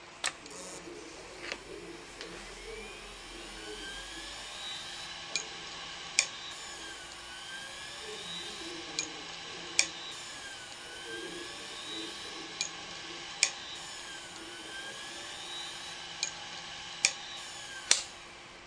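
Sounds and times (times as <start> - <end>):
damaged WD Raptor X hard drive: 0.3 - 18.5.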